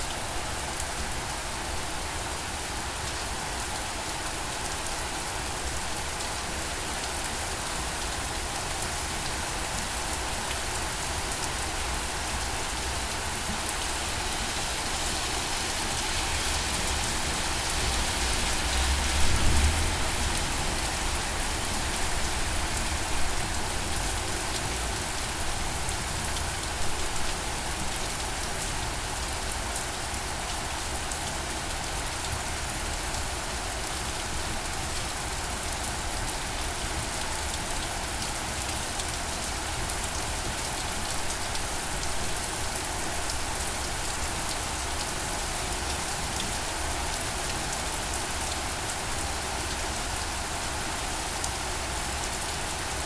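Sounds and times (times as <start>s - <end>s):
rain: 0.0s - 53.0s.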